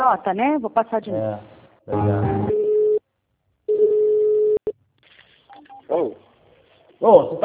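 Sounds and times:
speech: 0:00.0 - 0:02.6, 0:05.9 - 0:06.2, 0:07.0 - 0:07.4
telephone busy tone after a dropped call: 0:03.7 - 0:04.7.

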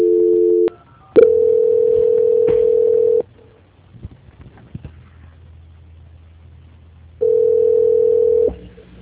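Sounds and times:
telephone line tone during call transfer: 0:00.0 - 0:03.2, 0:07.2 - 0:08.6.

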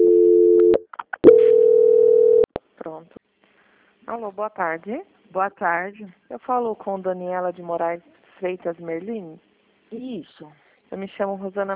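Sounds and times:
steady mid-pitched telephone tone during a call transfer: 0:00.0 - 0:02.5
speech: 0:04.2 - 0:11.7.

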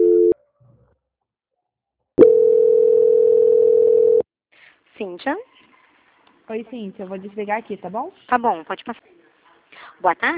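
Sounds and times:
telephone line tone during a call transfer: 0:00.0 - 0:00.4, 0:02.2 - 0:04.2
speech: 0:05.1 - 0:05.5, 0:06.5 - 0:09.1, 0:10.0 - 0:10.3.

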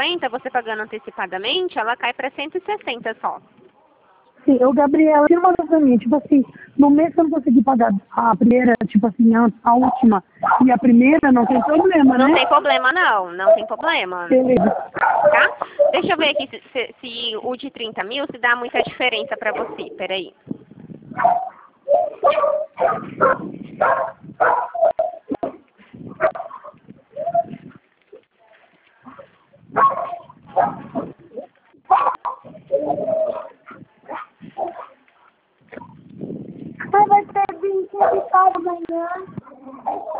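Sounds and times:
speech: 0:00.2 - 0:03.6, 0:04.4 - 0:26.6, 0:29.7 - 0:31.2, 0:31.9 - 0:34.8, 0:35.7 - 0:40.1
dogs barking inside a house: 0:09.8 - 0:16.5, 0:19.3 - 0:19.9, 0:21.1 - 0:27.8, 0:29.0 - 0:31.2, 0:31.8 - 0:35.9, 0:37.9 - 0:38.5, 0:39.3 - 0:40.1
dogs' higher whining yelps: 0:14.5 - 0:16.4, 0:21.2 - 0:25.5, 0:26.1 - 0:27.8, 0:29.8 - 0:31.1, 0:31.9 - 0:35.0, 0:39.4 - 0:40.1.

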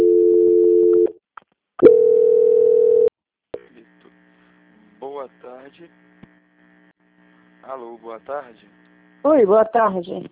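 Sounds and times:
telephone line tone during a call transfer: 0:00.0 - 0:01.1, 0:01.8 - 0:03.1
speech: 0:05.7 - 0:06.2, 0:07.6 - 0:10.3.

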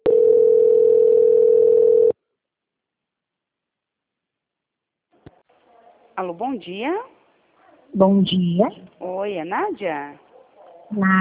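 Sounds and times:
telephone call transfer tone: 0:00.0 - 0:02.2
speech: 0:06.2 - 0:07.1, 0:08.0 - 0:10.2, 0:10.9 - 0:11.1.

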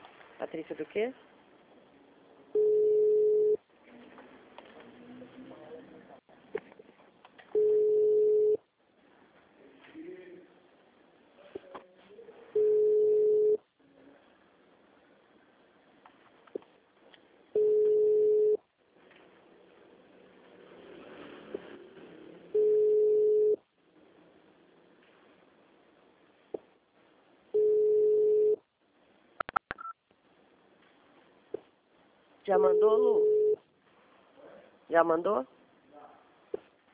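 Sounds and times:
speech: 0:00.4 - 0:01.3, 0:32.6 - 0:33.2, 0:35.0 - 0:35.6
telephone line tone beeps while placing a call: 0:02.6 - 0:03.6, 0:07.6 - 0:08.6, 0:12.6 - 0:13.6, 0:17.6 - 0:18.6, 0:22.6 - 0:23.6, 0:27.6 - 0:28.6, 0:32.7 - 0:33.6.

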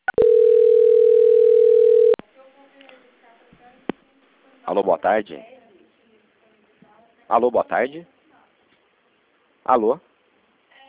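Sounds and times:
steady single-pitched telephone tone during a call transfer: 0:00.0 - 0:02.2
speech: 0:04.7 - 0:05.6, 0:07.3 - 0:08.1, 0:09.6 - 0:10.1.

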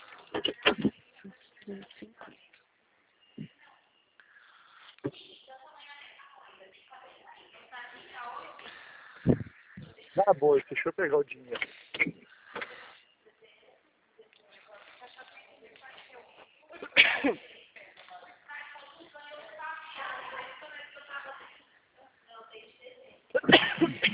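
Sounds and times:
person coughing: 0:00.3 - 0:01.0, 0:16.8 - 0:17.4, 0:23.3 - 0:24.0
speech: 0:10.4 - 0:11.8.

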